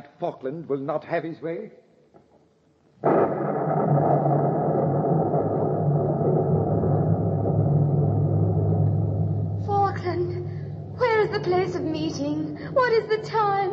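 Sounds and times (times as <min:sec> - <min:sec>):
speech: 0:00.2 - 0:01.8, 0:11.4 - 0:13.7
deep rolling thunder from a storm at night: 0:03.0 - 0:13.7.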